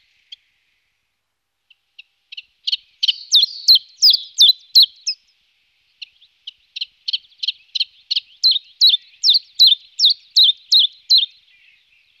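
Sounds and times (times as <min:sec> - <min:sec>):
Phylloscopus collybita calling: 0:02.7 - 0:05.2, 0:07.1 - 0:11.3.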